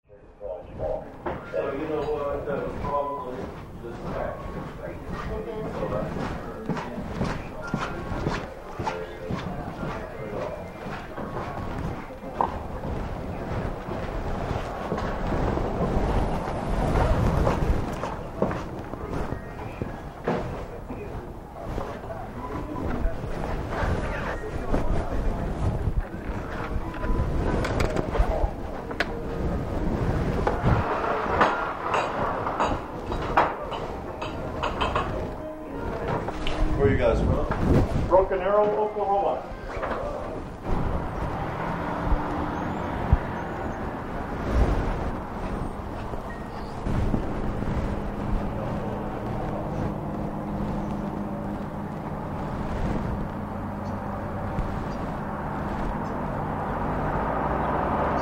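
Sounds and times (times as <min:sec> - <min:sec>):
gift shop ambience: 0:00.1 - 0:58.1.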